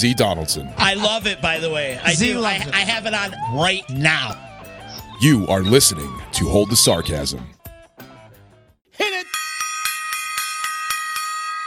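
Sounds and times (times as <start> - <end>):
speech: 0.0 - 4.5, 5.2 - 7.6
bright bell ringing like a stock exchange opening bell: 9.2 - 11.6.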